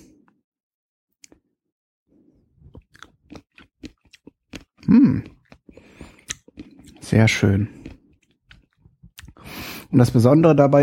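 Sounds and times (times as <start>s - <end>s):
person chewing soft pickled mustard seeds: 2.4s - 9.6s
speech: 4.9s - 5.4s, 7.1s - 7.8s, 10.0s - 10.8s.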